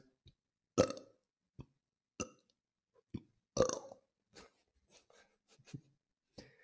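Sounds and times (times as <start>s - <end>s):
person burping on command: 0.8s - 1.2s, 2.2s - 2.5s, 3.2s - 4.1s.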